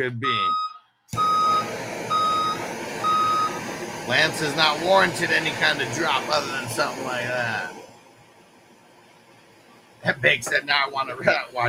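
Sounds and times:
speech: 0.0s - 1.4s, 4.1s - 7.8s, 10.0s - 11.6s
truck reversing alarm beeping: 0.4s - 3.7s
loud rumbling truck engine: 1.3s - 11.6s.

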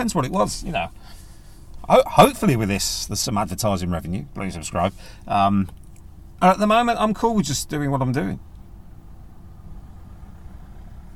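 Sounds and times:
speech: 0.0s - 1.2s, 1.8s - 5.8s, 6.4s - 8.5s
low engine rumble from a car outside: 0.0s - 11.1s.

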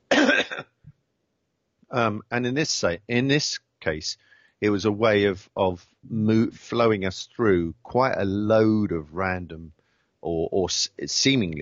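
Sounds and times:
person coughing harshly: 0.1s - 0.8s
speech: 0.3s - 0.7s, 1.9s - 11.5s.

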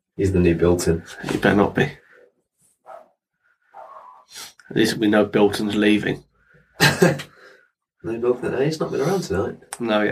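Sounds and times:
speech: 0.2s - 2.0s, 4.3s - 7.3s, 8.0s - 10.1s
dog barking and yelping: 2.8s - 3.1s.

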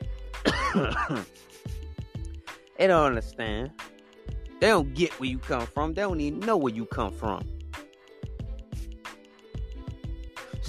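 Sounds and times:
person clearing throat with a rough gravelly rasp: 0.5s - 1.3s
short cough: 0.5s - 1.3s
speech: 0.8s - 1.5s, 2.8s - 3.8s, 4.6s - 7.6s.

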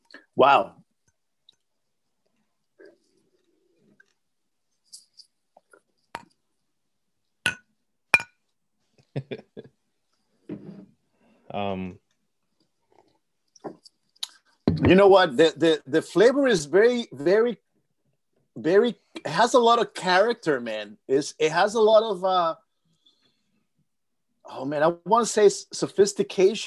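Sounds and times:
speech: 0.4s - 0.8s, 11.5s - 12.0s, 14.8s - 17.6s, 18.6s - 22.6s, 24.5s - 26.6s
glasses of premium British ale clinking in a toast: 7.5s - 8.4s.

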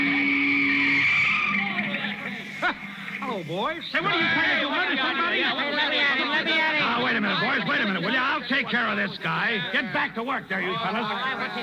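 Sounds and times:
car tires squealing in a skid on a field: 0.0s - 2.8s
laughter: 1.4s - 11.6s
speech: 3.4s - 11.6s.

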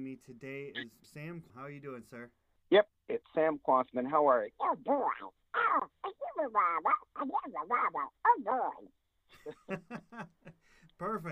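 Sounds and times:
speech: 0.1s - 11.3s
voice actor imitating a cartoon duck quacking: 4.0s - 8.9s.

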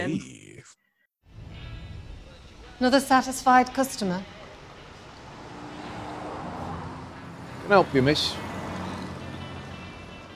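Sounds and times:
speech: 0.1s - 0.5s, 2.8s - 4.4s, 7.7s - 8.4s
MGA 1500 sports car engine driving by: 4.2s - 10.3s.

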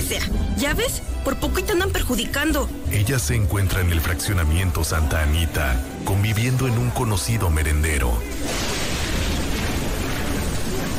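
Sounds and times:
speech: 0.1s - 8.8s
loud thunder crack rolling into a sustained roar: 8.4s - 10.9s.

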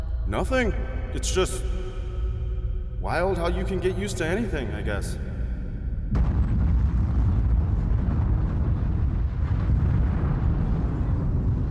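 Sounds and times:
sustained heavy deep rumble: 0.0s - 11.6s
speech: 0.3s - 1.8s, 3.0s - 5.3s
powerful explosion blast: 6.1s - 11.6s.

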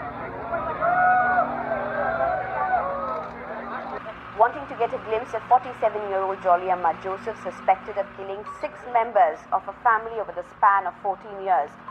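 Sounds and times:
large crowd booing and shouting outdoors on the streets of rural Kozhikode: 0.0s - 4.0s
speech: 4.8s - 11.8s.

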